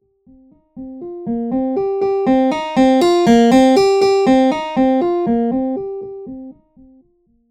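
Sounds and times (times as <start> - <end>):
harpsichord with velocity-controlled filter: 1.9 - 6.2.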